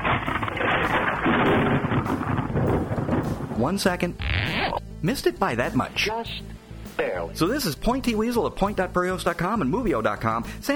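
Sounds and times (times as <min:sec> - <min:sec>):
loud thunder rumbling with crackling: 0:00.0 - 0:04.8
speech: 0:03.6 - 0:10.7.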